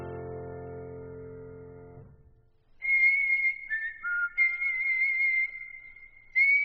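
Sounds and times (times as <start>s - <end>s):
whistled song: 2.7s - 6.6s.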